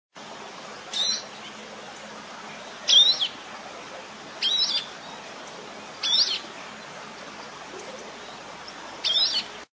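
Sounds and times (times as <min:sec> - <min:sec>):
rock sparrow calling: 0:00.9 - 0:01.6, 0:02.9 - 0:03.4, 0:04.4 - 0:05.3, 0:05.9 - 0:06.5, 0:07.4 - 0:09.5.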